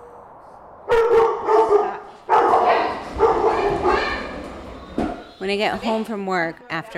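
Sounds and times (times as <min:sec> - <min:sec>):
dog barking and howling: 0:00.9 - 0:04.5
speech: 0:05.4 - 0:06.9.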